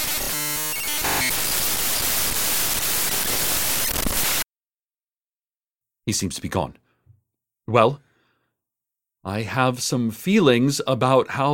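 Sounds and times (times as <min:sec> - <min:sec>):
loud crackling radio static from a wiggled wire: 0:00.0 - 0:04.4
speech: 0:06.1 - 0:06.8, 0:07.7 - 0:08.1, 0:09.2 - 0:11.5.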